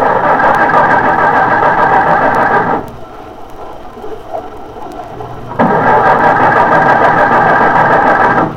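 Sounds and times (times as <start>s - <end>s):
car engine cranking and failing to start: 0.0s - 3.1s, 5.2s - 8.5s.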